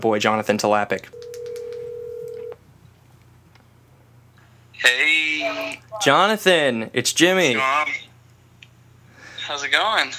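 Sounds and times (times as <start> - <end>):
speech: 0.0 - 1.3, 4.8 - 8.0, 9.5 - 10.1
steady telephone tone as a phone call is placed: 1.1 - 2.6.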